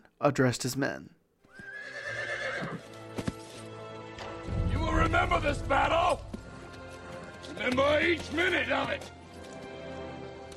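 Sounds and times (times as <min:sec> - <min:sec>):
speech: 0:00.2 - 0:01.2, 0:05.1 - 0:06.3, 0:07.6 - 0:09.2
horse whinnying as it is mounted at San Jacinto Creek in Texas: 0:01.5 - 0:02.9
horse hoof clops: 0:02.7 - 0:04.3, 0:06.3 - 0:10.5.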